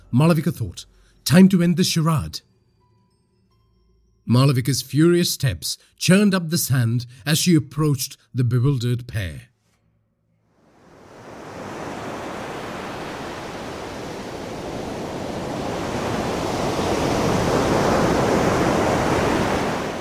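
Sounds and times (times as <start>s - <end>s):
speech: 0.1s - 2.5s, 4.3s - 9.5s
sea waves crashing on a beach: 10.6s - 20.0s.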